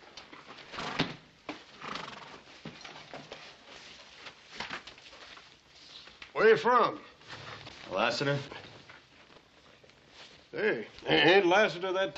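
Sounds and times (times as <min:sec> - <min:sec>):
horse hooves shuffling: 0:01.4 - 0:11.1
horse whinnying: 0:01.8 - 0:02.5
speech: 0:06.4 - 0:07.1, 0:07.9 - 0:08.6, 0:10.6 - 0:12.1.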